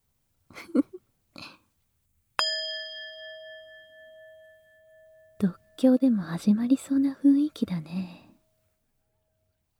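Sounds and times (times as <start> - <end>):
metal singing bowl struck: 2.4 - 6.1
speech: 5.4 - 8.2.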